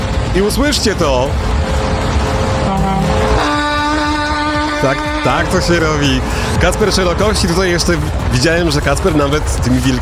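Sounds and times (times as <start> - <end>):
rumbling truck engine: 0.0 - 10.0
speech: 0.4 - 1.8, 4.8 - 10.0
big truck horn blaring: 1.5 - 7.6.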